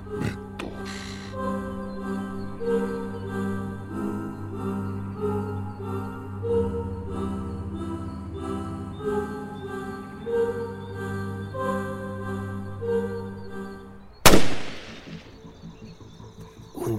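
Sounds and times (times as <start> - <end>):
quieter outdoor ambience in a forest: 0.0 - 16.9
sustained droning tonal music: 0.0 - 16.9
loud gunshot echoing through a forest: 14.3 - 15.3.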